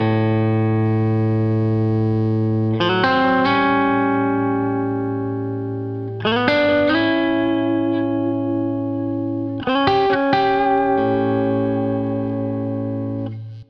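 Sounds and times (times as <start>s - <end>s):
country guitar breakdown: 0.0s - 13.6s.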